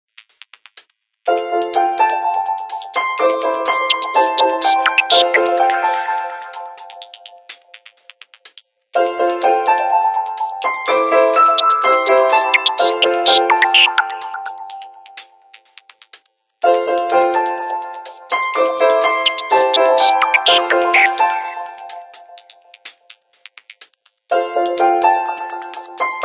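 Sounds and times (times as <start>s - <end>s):
Windows Phone 7.1 ringtone melody: 1.4s - 6.9s, 9.0s - 15.0s, 16.7s - 22.1s, 24.5s - 26.2s.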